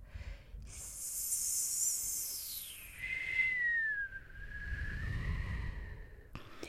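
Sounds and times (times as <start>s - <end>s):
wind whistling at a door: 2.1s - 6.3s.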